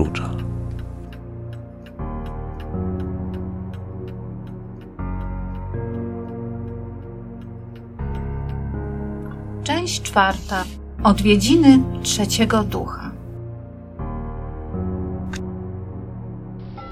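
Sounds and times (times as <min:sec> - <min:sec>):
clock ticking: 0:00.0 - 0:13.4
deep resonant clock chimes striking midnight: 0:00.0 - 0:16.9
speech: 0:09.8 - 0:13.1.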